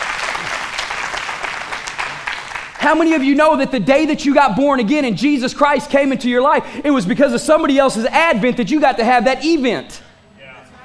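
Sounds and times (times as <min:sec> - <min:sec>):
audience applauding for three women: 0:00.0 - 0:03.2
speech: 0:02.8 - 0:10.1.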